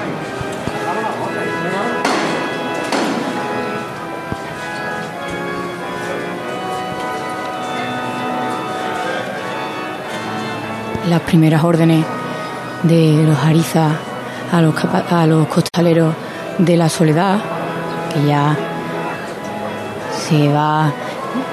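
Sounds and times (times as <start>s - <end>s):
murmur of a large outdoor crowd: 0.0s - 21.5s
metal knocker on a wooden procession float: 2.0s - 3.4s
speech: 11.0s - 12.2s, 12.8s - 17.5s, 18.1s - 18.7s, 20.3s - 21.5s.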